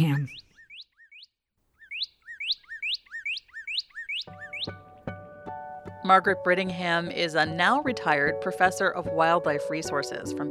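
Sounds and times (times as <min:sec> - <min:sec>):
speech: 0:00.0 - 0:00.4, 0:06.1 - 0:10.5
northern cardinal singing downslurred whistles: 0:00.0 - 0:04.9.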